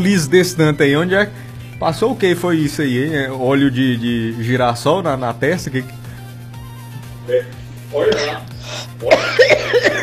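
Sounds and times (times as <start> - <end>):
speech: 0.0 - 6.0, 7.3 - 10.0
woman coughing in a phone recording: 8.1 - 10.0.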